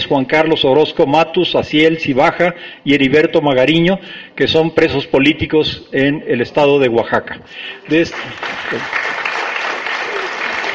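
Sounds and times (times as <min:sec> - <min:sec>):
speech: 0:00.1 - 0:09.2
crowd applauding at a university council meeting: 0:07.8 - 0:10.7.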